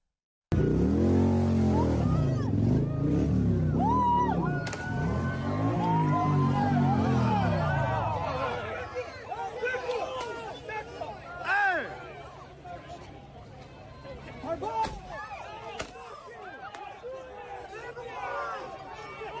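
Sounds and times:
motorcycle engines revving at a street rally: 0.5s - 9.5s
murmur of crowd voices: 0.6s - 19.3s.

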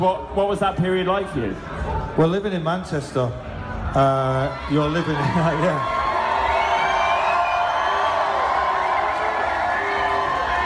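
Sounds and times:
speech: 0.0s - 6.0s
large crowd roaring and booing: 4.7s - 10.6s.

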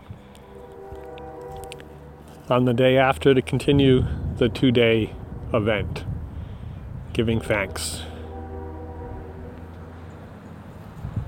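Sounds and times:
passing train horn blast: 0.0s - 3.2s, 7.3s - 10.4s
low rumble of the passing train: 0.0s - 11.2s
speech: 2.5s - 6.1s, 7.2s - 8.1s.

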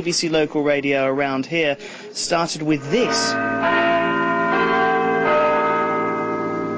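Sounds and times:
speech: 0.0s - 4.0s
city clock bell of Nottingham chiming: 2.2s - 6.7s.

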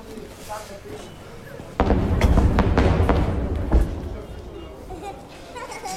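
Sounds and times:
murmur of voices: 0.0s - 5.9s
heavy blast of a shell explosion: 1.8s - 5.5s
rumbling crackling impacts: 1.8s - 5.5s
little kid giggling: 4.8s - 5.9s.

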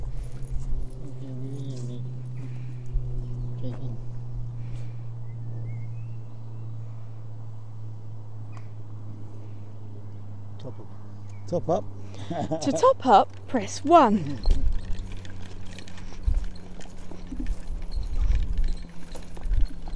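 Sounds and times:
low droning hum: 0.0s - 19.9s
speech: 11.5s - 14.6s
handbag squeaking as it is handled: 14.0s - 19.9s.

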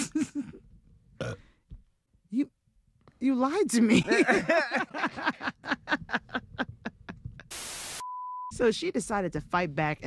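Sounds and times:
person burping with throaty croaking belches: 1.2s - 1.5s
speech: 3.2s - 6.2s, 8.6s - 10.0s
laughter: 3.8s - 7.5s.

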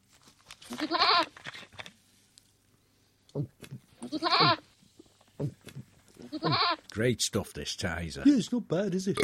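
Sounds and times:
goat bleating: 0.7s - 1.3s, 4.0s - 4.7s, 6.2s - 6.8s
speech: 0.7s - 1.3s, 7.0s - 9.2s.

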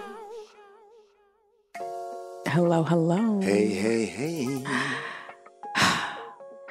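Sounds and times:
speech: 2.6s - 5.1s
dramatic heavy breathy exhale: 4.6s - 6.4s.

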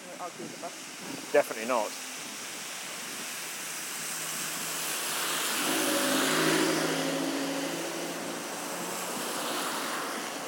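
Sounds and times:
speech: 0.2s - 2.1s
steady roar of road traffic: 2.0s - 10.4s
vehicle passing with low engine hum: 4.7s - 10.4s.

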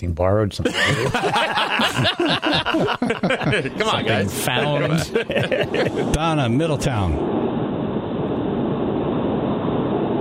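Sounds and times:
speech: 0.0s - 7.6s
laughter: 0.6s - 6.2s
wind roar buffeting through an open car window: 3.8s - 10.1s.

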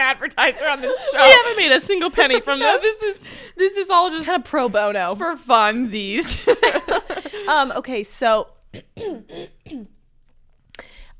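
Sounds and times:
speech: 0.0s - 9.9s
laughter: 0.6s - 3.2s, 6.2s - 7.6s
person coughing in a lingering coughing fit: 8.7s - 10.0s.

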